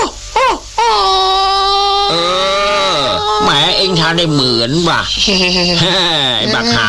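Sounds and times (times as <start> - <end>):
person imitating a dog howling and yelping: 0.0 - 4.3, 6.4 - 6.8
speech: 4.1 - 6.8.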